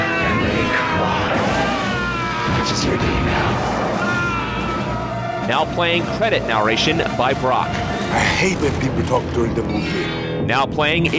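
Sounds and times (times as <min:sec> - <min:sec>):
man screaming: 0:00.0 - 0:05.5
speech: 0:05.5 - 0:11.1.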